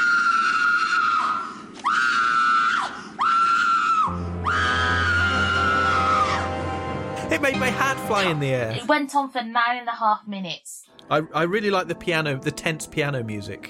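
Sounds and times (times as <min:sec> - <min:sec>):
woman screaming in a TV drama clip: 0:00.0 - 0:06.6
speech: 0:07.5 - 0:13.6.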